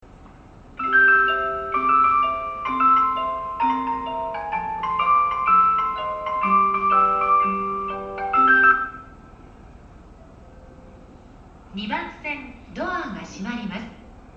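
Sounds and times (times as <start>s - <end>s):
railway station departure bell: 0.8s - 9.4s.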